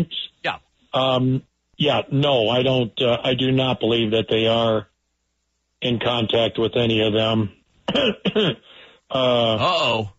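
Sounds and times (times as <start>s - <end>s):
speech: 0.0s - 4.9s, 5.8s - 10.1s
loud gravelly throat clearing: 7.9s - 10.1s.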